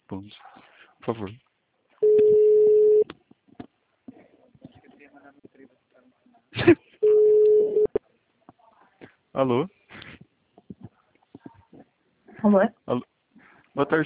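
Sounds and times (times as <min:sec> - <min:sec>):
speech: 0:00.1 - 0:01.5, 0:09.4 - 0:09.8, 0:12.4 - 0:13.1, 0:13.8 - 0:14.0
outgoing telephone call ringback tone: 0:02.0 - 0:03.0, 0:07.0 - 0:07.9.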